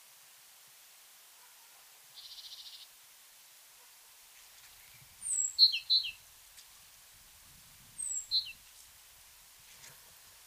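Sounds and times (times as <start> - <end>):
great tit calling: 4.7 - 6.2, 8.0 - 8.7.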